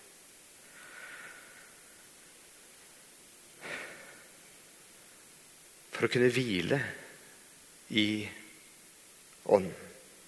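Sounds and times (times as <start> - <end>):
steady hiss: 0.0 - 10.2
person inhaling deeply: 0.6 - 1.9, 3.6 - 4.3
speech: 6.0 - 7.0, 7.9 - 8.4, 9.5 - 9.8.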